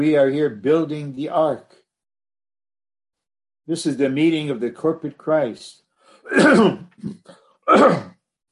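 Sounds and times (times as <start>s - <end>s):
speech: 0.0s - 1.8s, 3.7s - 8.1s
person grunting: 6.3s - 8.1s
person clearing throat: 6.3s - 8.2s.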